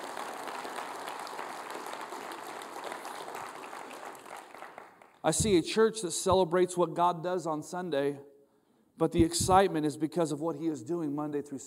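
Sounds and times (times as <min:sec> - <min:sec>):
audience applauding: 0:00.0 - 0:05.4
speech: 0:05.2 - 0:08.3, 0:09.0 - 0:11.6.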